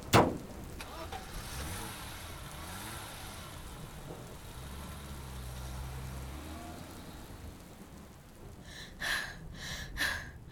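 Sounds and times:
sharp thump: 0.0 - 0.5
car engine rumbling while driving: 0.0 - 10.5.

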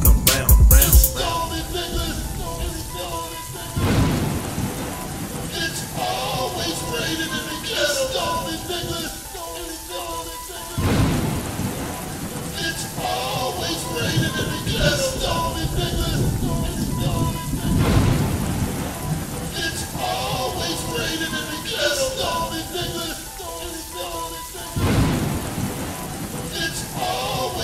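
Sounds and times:
deep thunder booms: 0.0 - 7.3, 10.8 - 21.4, 24.8 - 26.2
steady rain: 0.0 - 27.6
tonal music: 0.0 - 27.6
voice-like melody: 0.0 - 27.6.

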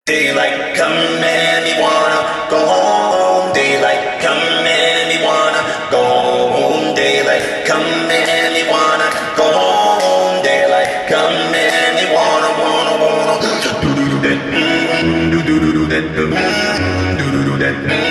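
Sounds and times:
beatbox with reverb: 0.0 - 18.1.

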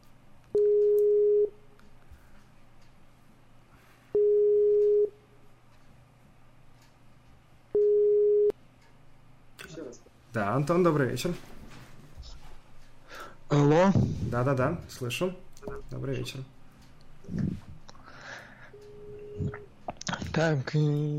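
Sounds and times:
telephone ringing tone beeps of an outgoing call: 0.6 - 1.6, 4.2 - 5.2, 7.8 - 8.5, 18.8 - 19.6
speech: 10.4 - 11.6, 13.6 - 16.6, 20.4 - 21.1.

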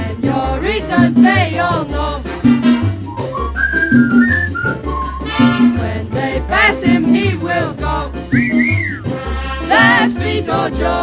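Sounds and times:
instrumental backing with a bouncing bass line: 0.0 - 11.0
person whistling a bright high melody: 3.0 - 5.5, 8.3 - 9.2.

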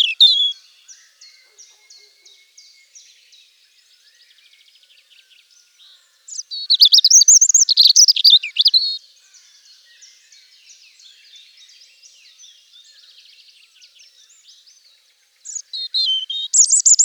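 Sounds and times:
European robin singing: 0.0 - 3.4, 5.4 - 17.0.

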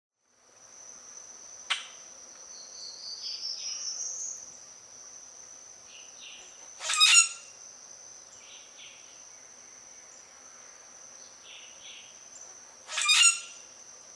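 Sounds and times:
high insect drone: 0.2 - 14.1
Common grackle Quiscalus quiscula calling with chack, whistle and screeches: 1.7 - 2.0, 6.3 - 7.5, 12.9 - 13.6.

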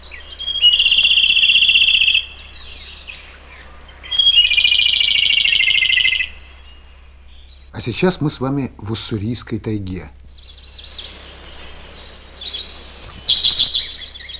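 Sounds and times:
Siberian blue robin song in the Ussuri taiga: 0.0 - 14.3
nightingale singing trilling whistles: 0.0 - 14.3
low steady rumble: 2.2 - 14.3
speech: 7.8 - 10.2.

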